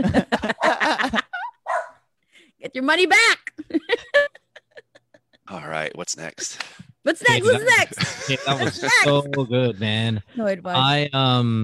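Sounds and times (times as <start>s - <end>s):
speech: 0.0s - 0.5s, 2.8s - 3.6s, 5.6s - 11.6s
laughter: 0.0s - 1.6s, 3.6s - 6.6s, 7.2s - 10.2s
dog barking: 1.6s - 2.0s.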